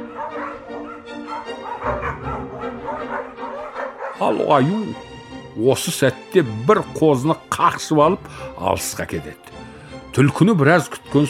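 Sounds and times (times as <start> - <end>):
dogs barking and yelping while chasing a fox: 0.0 - 4.4
speech: 4.2 - 11.2.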